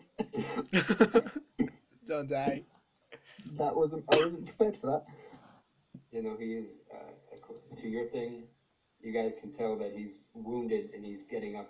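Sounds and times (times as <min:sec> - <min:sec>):
laughter: 0:00.2 - 0:01.7
speech: 0:00.7 - 0:01.4, 0:02.2 - 0:02.8, 0:03.4 - 0:05.2, 0:06.1 - 0:07.2, 0:07.8 - 0:11.6
person coughing: 0:04.1 - 0:04.5.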